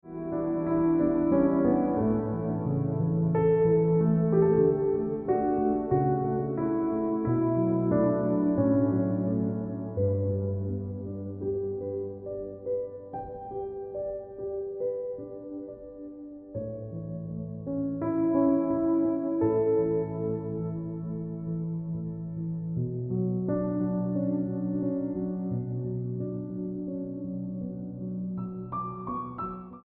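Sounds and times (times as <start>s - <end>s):
piano ringtone music: 0.0s - 29.8s.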